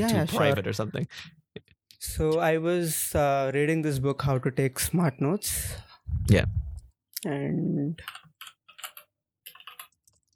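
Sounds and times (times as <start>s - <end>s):
speech: 0.0s - 1.4s, 2.0s - 8.2s
Keychron mechanical keyboard with brown switches typing: 8.0s - 10.2s.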